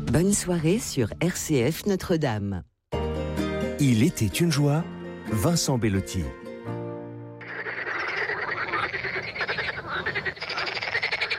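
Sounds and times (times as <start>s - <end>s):
speech: 0.1s - 2.7s, 3.8s - 6.4s
chorus of many frogs croaking: 7.4s - 11.3s.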